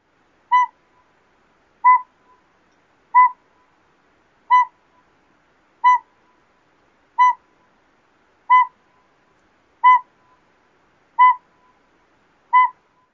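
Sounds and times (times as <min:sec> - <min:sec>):
northern pygmy owl tooting: 0:00.5 - 0:00.8, 0:01.8 - 0:02.4, 0:03.1 - 0:03.4, 0:04.5 - 0:04.8, 0:05.8 - 0:06.1, 0:07.2 - 0:07.4, 0:08.5 - 0:08.8, 0:09.8 - 0:10.1, 0:11.2 - 0:11.5, 0:12.5 - 0:13.1.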